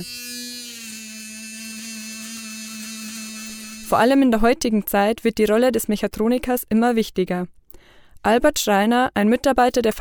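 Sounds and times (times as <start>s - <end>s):
speech: 0.0s - 0.2s, 3.9s - 7.6s, 8.2s - 10.0s
electric toothbrush buzzing: 0.0s - 4.2s.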